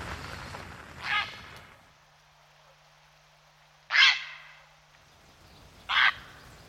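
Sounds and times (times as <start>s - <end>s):
grey heron giving harsh croaking calls: 3.9s - 4.6s, 5.9s - 6.4s.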